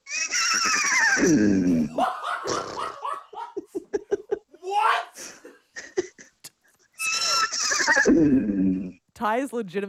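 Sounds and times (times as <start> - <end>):
person imitating a horse neigh: 0.0 - 3.0, 7.0 - 9.0
speech: 1.2 - 2.1, 9.2 - 9.8.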